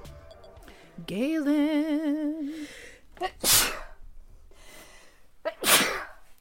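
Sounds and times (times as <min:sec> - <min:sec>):
speech: 0:01.0 - 0:03.8
quiet breathing: 0:02.4 - 0:03.2, 0:04.0 - 0:05.4
sharp inhaling catch before sneeze: 0:02.5 - 0:03.0, 0:04.5 - 0:05.3
person sneezing loudly: 0:03.2 - 0:04.0, 0:05.4 - 0:06.3.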